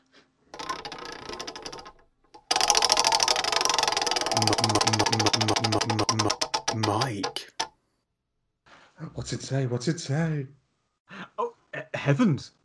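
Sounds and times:
spinning prize wheel ratcheting clicks: 0.6 - 7.7
speech: 4.4 - 6.0, 9.2 - 10.6, 12.0 - 12.6.

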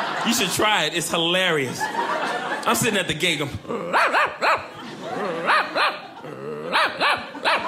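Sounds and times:
laughter: 0.0 - 0.8, 1.6 - 7.6
speech: 0.2 - 5.9
person imitating a dog barking with a voice: 3.6 - 7.6.

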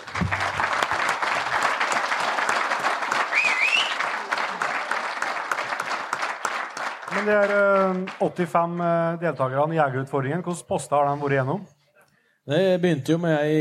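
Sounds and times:
room full of people clapping: 0.0 - 10.0
whistle: 3.3 - 4.1
speech: 7.2 - 11.7, 12.5 - 13.5.

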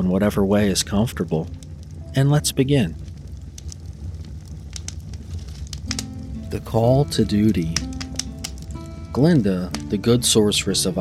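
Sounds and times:
speech: 0.0 - 3.1, 6.5 - 7.9, 9.2 - 10.9
fireplace crackling: 0.0 - 10.9
low rumbling roar of fireplace flames: 0.0 - 10.9
sharp pops from a fireplace: 3.1 - 10.2.

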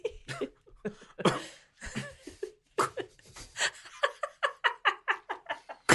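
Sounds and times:
laughter: 0.0 - 5.9
stifled coughing fit: 0.2 - 3.2.

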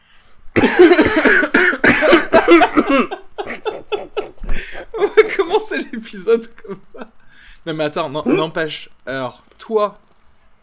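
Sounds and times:
person hacking and coughing: 0.6 - 5.5
laughter: 2.1 - 7.2
speech: 6.1 - 10.0.

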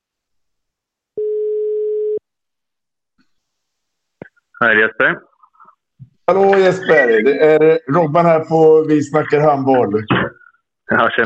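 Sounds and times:
telephone ringing tone while placing a call: 1.2 - 2.2
speech: 4.6 - 5.3, 6.3 - 10.3, 10.9 - 11.2.

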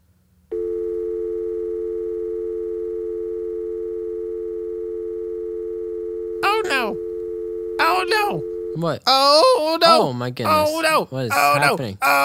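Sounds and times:
telephone dial tone while placing a phone call: 0.5 - 8.8
speech: 8.3 - 12.2.

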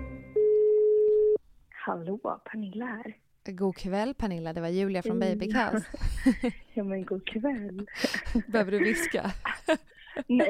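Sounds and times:
phone call ringing tone: 0.2 - 1.4
speech: 2.2 - 10.4
laughter: 5.8 - 10.4.

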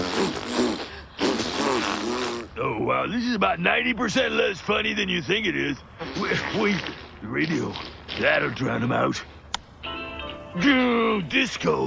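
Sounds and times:
loud sputtering fart noises: 0.0 - 2.6, 6.0 - 8.8
speech: 2.8 - 9.4, 10.6 - 11.8.

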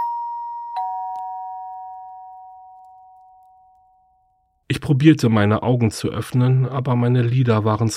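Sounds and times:
two-tone doorbell chime at front door: 0.0 - 4.5
speech: 4.8 - 7.9.

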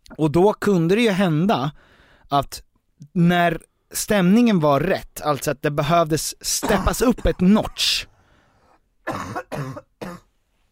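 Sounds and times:
speech: 0.2 - 8.1, 9.1 - 10.2
deliberate staged coughs: 6.5 - 8.0, 9.0 - 10.3.

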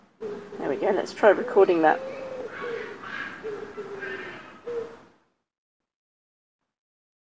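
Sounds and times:
common wood pigeon cooing: 0.2 - 5.2
speech: 0.8 - 2.2.

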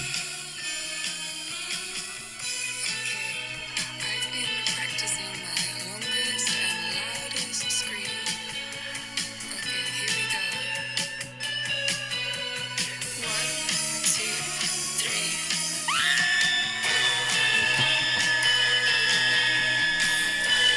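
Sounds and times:
loud dense rock song: 0.0 - 20.7
female singer holding a long sustained scream: 15.8 - 16.6.

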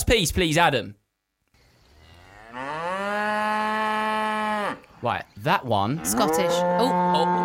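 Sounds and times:
speech: 0.0 - 1.0, 5.0 - 7.4
cow mooing: 2.0 - 4.9, 5.9 - 7.4.

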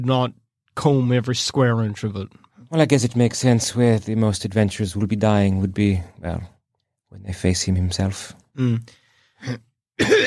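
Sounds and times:
speech: 0.0 - 10.2
person coughing: 9.4 - 10.2.

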